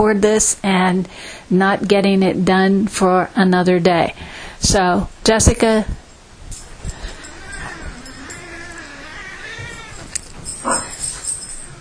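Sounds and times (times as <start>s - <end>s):
speech: 0.0s - 6.0s
cats yowling and caterwauling while dogs harass them: 6.9s - 11.8s.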